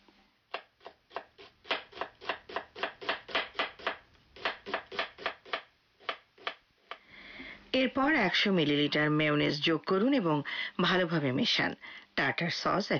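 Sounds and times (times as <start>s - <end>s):
knife finely chopping onion for tartar sauce: 0.5s - 6.6s
speech: 7.8s - 12.9s.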